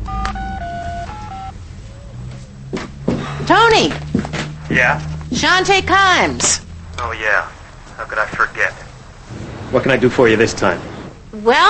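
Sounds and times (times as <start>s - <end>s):
cordless phone keypad dialing tones: 0.0s - 1.6s
speech: 3.5s - 4.0s, 4.7s - 8.8s, 9.7s - 11.6s.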